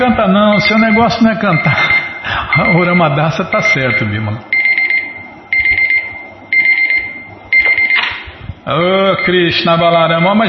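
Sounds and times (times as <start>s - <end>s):
speech: 0.0s - 1.9s, 2.6s - 4.5s, 8.7s - 10.4s
alarm clock ringing with shrill electronic beeps: 0.0s - 8.3s, 9.0s - 10.4s.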